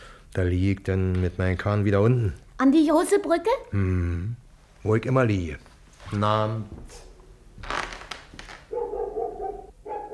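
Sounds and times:
speech: 0.4s - 7.1s
dog barking at a house: 8.7s - 10.1s.

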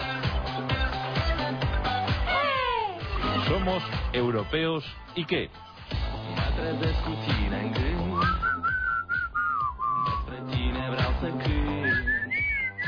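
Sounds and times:
rhythmic backing music with a steady beat: 0.0s - 12.8s
speech: 3.6s - 5.7s, 6.3s - 8.4s
person whistling a wavering clear melody: 8.0s - 10.4s, 11.7s - 12.8s.

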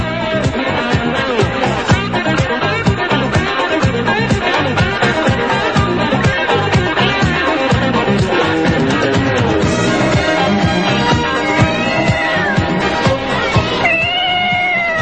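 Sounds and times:
dense busy rhythmic background: 0.0s - 15.0s
wild cat meowing: 13.8s - 15.0s.

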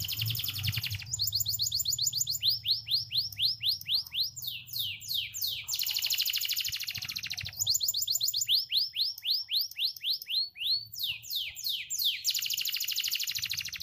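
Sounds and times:
faint low hum: 0.0s - 6.1s
canary singing: 0.0s - 13.8s.

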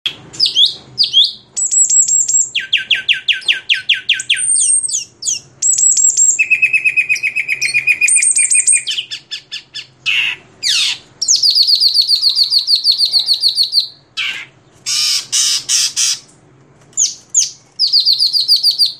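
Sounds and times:
greater green leafbird singing: 0.1s - 16.3s, 16.9s - 18.9s
speech: 11.9s - 16.2s.

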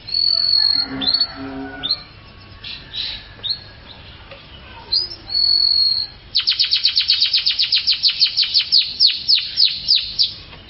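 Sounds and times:
canary singing: 0.0s - 10.6s.

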